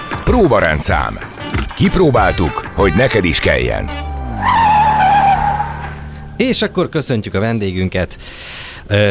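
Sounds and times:
speech: 0.3s - 4.6s, 6.4s - 9.0s
car tire squealing: 3.9s - 7.0s.

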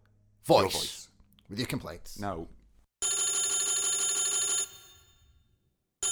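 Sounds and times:
speech: 0.5s - 2.6s
loud bright telephone bell ringing: 3.0s - 5.4s.

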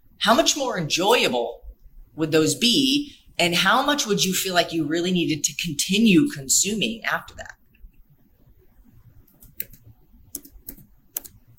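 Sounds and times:
speech: 0.2s - 1.6s, 2.2s - 7.6s
typing on a computer keyboard: 9.3s - 11.5s.

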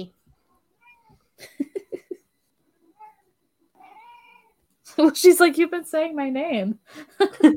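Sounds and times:
female cat meowing after waking up: 0.8s - 1.2s, 3.8s - 4.6s
speech: 5.0s - 7.5s.

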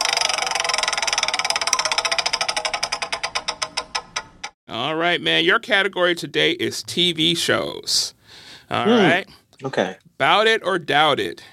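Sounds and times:
prize wheel clicker ticking during a game: 0.0s - 4.6s
speech: 4.7s - 11.5s.

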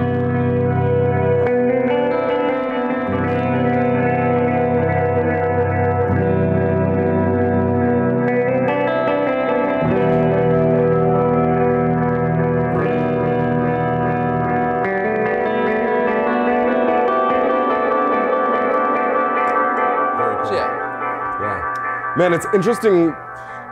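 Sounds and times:
electric guitar through tremolo pedal and RV6 reverb pedal: 0.0s - 23.7s
speech: 22.2s - 23.5s.

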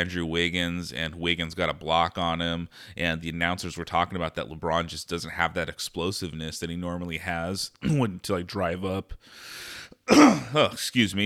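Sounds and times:
speech: 0.0s - 11.2s
throat clearing from a dry throat: 10.1s - 10.8s.

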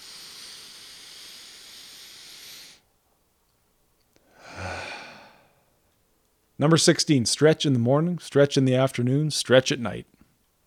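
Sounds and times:
deep breathing as a calming exercise for anxiety: 0.0s - 2.9s, 4.2s - 5.8s
soft slightly voiced sigh: 4.2s - 5.6s
speech: 6.6s - 10.2s.

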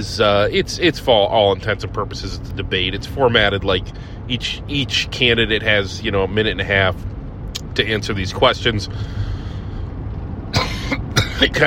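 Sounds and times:
speech: 0.0s - 7.1s, 7.8s - 9.3s, 10.9s - 11.6s
low steady rumble: 0.0s - 11.6s
single short sharp cough: 10.5s - 11.6s.

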